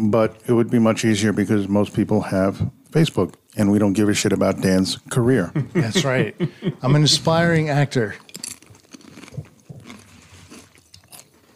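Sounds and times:
speech: 0.1 - 8.2
laughter: 5.4 - 7.6
person munching and chewing crunchy food: 8.2 - 11.5.

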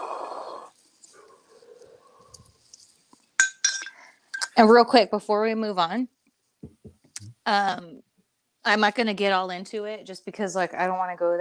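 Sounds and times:
soft handling sounds: 0.7 - 4.6
glasses clinking together in a toast: 3.4 - 4.6
speech: 4.6 - 6.2, 7.5 - 8.0, 8.6 - 11.3.

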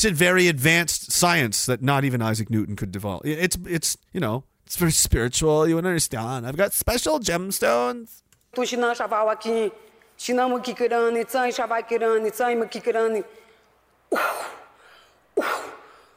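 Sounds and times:
speech: 0.0 - 13.4, 14.1 - 14.6, 15.4 - 15.7
woman coughing: 14.1 - 14.8, 15.4 - 16.0.

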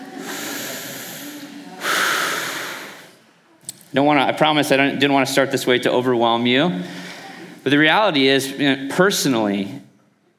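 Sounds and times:
deep breath drawn in: 0.0 - 3.2, 6.8 - 7.6
speech: 3.9 - 7.0, 7.6 - 9.8.

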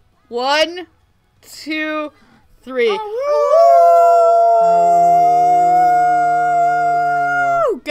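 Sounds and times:
speech: 0.3 - 3.8, 4.6 - 5.2
several people howling awoo imitating wolves: 3.0 - 7.8.

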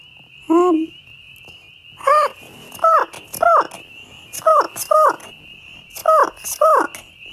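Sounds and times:
voice imitating albatross squawks: 2.0 - 3.8, 4.4 - 5.3, 5.9 - 7.0.

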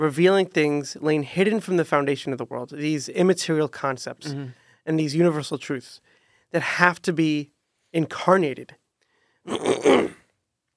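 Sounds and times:
speech: 0.0 - 8.8, 9.4 - 10.2
throat clearing: 4.2 - 4.5, 9.5 - 10.2.

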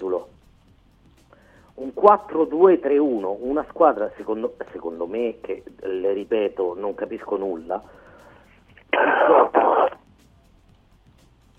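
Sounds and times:
speech: 1.8 - 8.0
person coughing harshly: 8.8 - 10.0.

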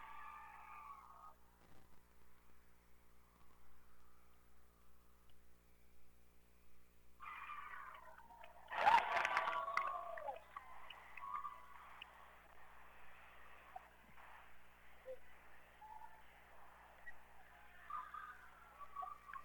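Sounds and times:
faint tonal sounds: 0.0 - 19.4
crowd cheering after game-winning shot: 7.2 - 19.4.

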